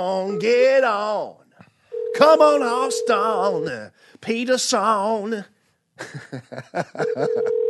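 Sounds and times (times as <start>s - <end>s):
speech: 0.0s - 1.4s, 2.2s - 7.6s
steady continuous phone line tone through a handset: 1.9s - 3.6s, 7.0s - 7.6s
laughter: 6.0s - 7.6s.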